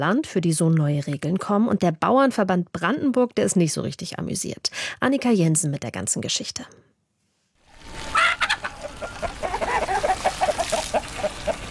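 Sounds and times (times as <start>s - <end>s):
speech: 0.0s - 7.0s
flock of chickens clucking in a farm chicken run in Nutetal: 7.9s - 11.6s
rooster crowing: 7.9s - 11.6s.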